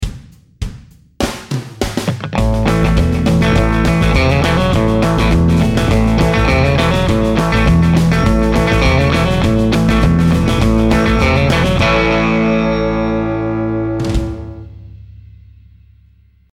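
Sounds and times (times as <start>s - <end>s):
country guitar lick: 2.0s - 14.7s.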